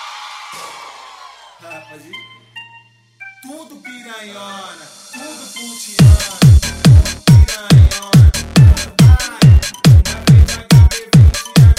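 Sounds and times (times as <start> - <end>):
cheers: 0.0 - 1.6
crowd of women screaming and whooping: 0.0 - 1.6
speech: 1.6 - 2.4, 3.4 - 10.6.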